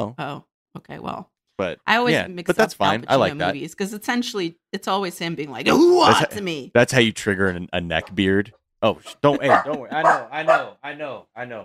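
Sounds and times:
speech: 0:00.0 - 0:11.6
laughter: 0:05.7 - 0:06.4, 0:07.3 - 0:10.7
puppy yelping barks: 0:09.4 - 0:10.7.

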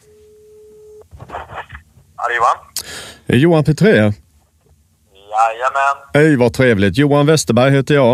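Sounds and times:
steady telephone ringback tone while calling: 0:00.0 - 0:01.0
speech: 0:02.3 - 0:04.2, 0:05.4 - 0:08.1.

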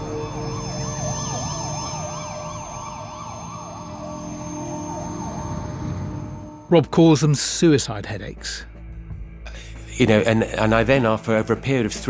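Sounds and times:
low rumble of road traffic: 0:00.0 - 0:06.6
ambulance siren wailing: 0:00.0 - 0:06.8
speech: 0:06.7 - 0:08.7, 0:10.0 - 0:12.0.

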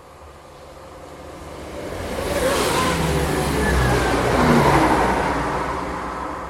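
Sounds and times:
passenger train speeding through a station: 0:00.0 - 0:06.4.

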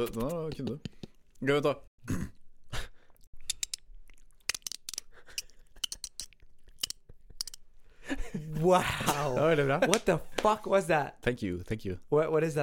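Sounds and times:
person imitating a dolphin with mouth clicks and squeaks: 0:00.0 - 0:01.3, 0:03.2 - 0:07.7
speech: 0:00.0 - 0:02.3, 0:08.4 - 0:12.6.

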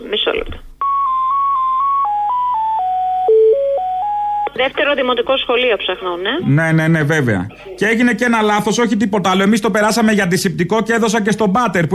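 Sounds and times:
speech: 0:00.1 - 0:00.7, 0:04.6 - 0:11.9
electronic telephone tones over the line while a caller waits on hold: 0:00.8 - 0:04.6.

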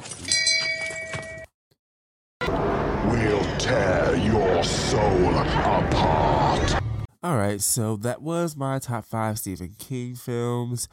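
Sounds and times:
bell ringing: 0:00.2 - 0:01.5
speech: 0:03.2 - 0:10.9.

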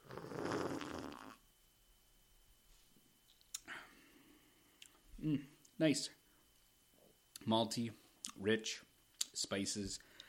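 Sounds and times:
loud slurping sip of spiced honey Christmas ale: 0:00.0 - 0:01.4
speech: 0:05.2 - 0:06.2, 0:07.4 - 0:10.1.

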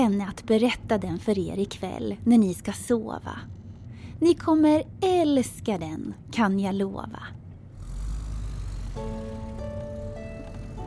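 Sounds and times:
speech: 0:00.0 - 0:03.6, 0:04.2 - 0:07.4, 0:09.0 - 0:09.8
whining hum of rising tones: 0:07.5 - 0:10.8
car engine rumbling low and steady: 0:07.6 - 0:10.8.

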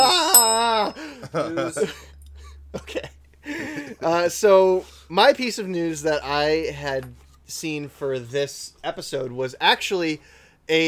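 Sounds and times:
voice imitating a ringing news bell: 0:00.0 - 0:01.1
speech: 0:01.3 - 0:03.1, 0:04.0 - 0:10.8.

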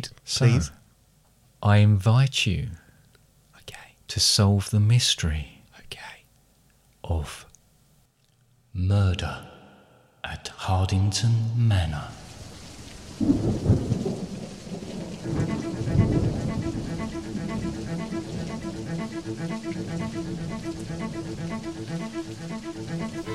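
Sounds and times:
speech: 0:00.0 - 0:00.8, 0:01.6 - 0:02.8, 0:03.7 - 0:06.1, 0:07.0 - 0:07.5, 0:08.8 - 0:09.5, 0:10.2 - 0:12.2, 0:13.2 - 0:14.1
heavy rain: 0:11.9 - 0:23.3
low thunder rumbling: 0:12.2 - 0:23.3
faint tonal hum: 0:15.4 - 0:23.3.

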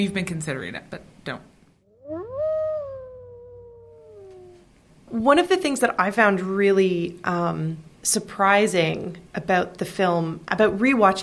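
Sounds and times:
speech: 0:00.0 - 0:01.5, 0:05.1 - 0:11.2
wolf howling: 0:01.9 - 0:04.7.

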